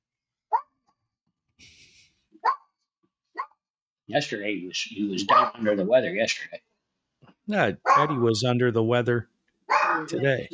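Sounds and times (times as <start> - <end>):
dog barking: 2.4 - 2.7, 7.8 - 8.2
speech: 4.1 - 6.7, 7.5 - 9.3, 10.0 - 10.5.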